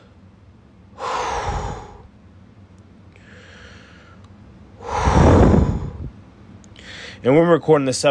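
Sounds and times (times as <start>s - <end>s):
person breathing deeply: 1.0s - 2.1s, 3.2s - 4.2s, 4.8s - 6.2s, 6.8s - 7.2s
speech: 7.2s - 8.0s.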